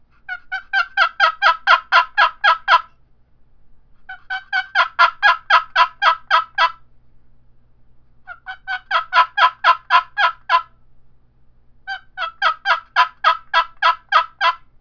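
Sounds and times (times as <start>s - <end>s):
cedar cherry box call yelps imitating a turkey: 0.3s - 2.9s, 4.1s - 6.8s, 8.3s - 10.7s, 11.9s - 14.7s.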